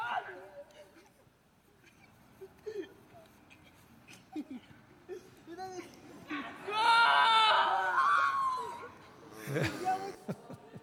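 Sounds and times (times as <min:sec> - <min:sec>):
boys shouting and cheering celebrating a goal: 0:06.6 - 0:08.9.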